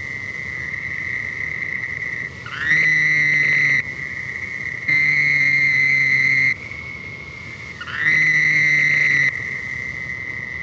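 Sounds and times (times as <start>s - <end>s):
background toad trill: 0.1s - 6.6s, 7.7s - 10.6s
toad Bufonidae trilling: 2.4s - 3.8s, 4.8s - 6.6s, 7.8s - 9.4s.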